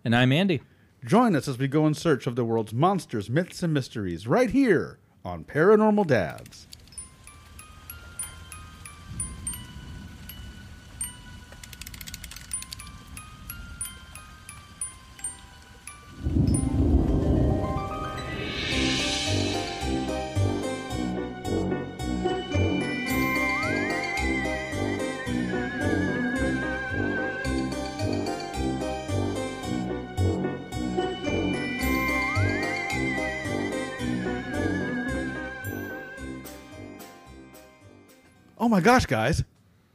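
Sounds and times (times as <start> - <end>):
speech: 0.0 - 6.8, 38.8 - 39.5
busy festive instrumental tune: 6.8 - 11.7, 12.3 - 39.1
bright jingle bells ringing: 6.8 - 21.2, 22.2 - 30.0, 30.7 - 37.7.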